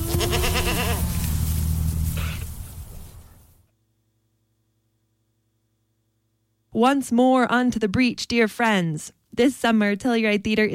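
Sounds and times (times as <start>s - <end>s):
goats munching on thistle bleating loudly: 0.0s - 1.2s
low rumbling: 0.0s - 3.6s
rustling: 0.0s - 3.7s
speech: 6.8s - 10.7s.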